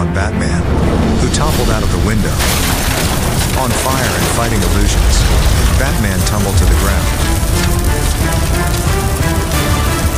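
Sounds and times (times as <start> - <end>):
speech: 0.2 - 0.6, 1.4 - 9.6
rain falling on a wet street: 3.3 - 10.1.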